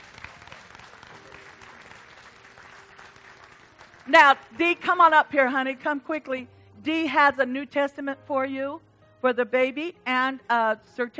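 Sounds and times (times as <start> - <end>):
audience applauding after a blessing: 0.0 - 4.1
speech: 4.1 - 11.1.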